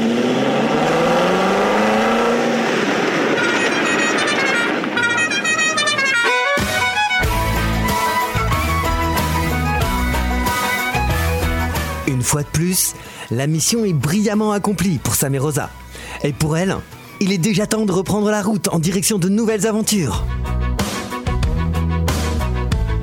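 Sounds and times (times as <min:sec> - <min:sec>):
sports car engine revving hard and accelerating: 0:00.0 - 0:04.8
rhythmic music with a heavy beat: 0:05.0 - 0:12.1, 0:20.2 - 0:23.0
speech: 0:12.6 - 0:20.6.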